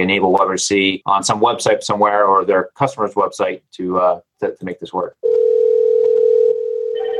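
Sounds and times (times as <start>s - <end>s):
speech: 0.0s - 5.5s
SIP softphone ringing tone beep: 5.2s - 7.1s.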